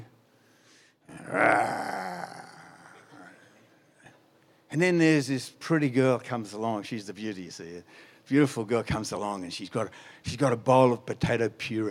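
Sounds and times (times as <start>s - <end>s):
human voice imitating a beast's deep rough growl: 1.1s - 3.5s
speech: 4.8s - 11.8s.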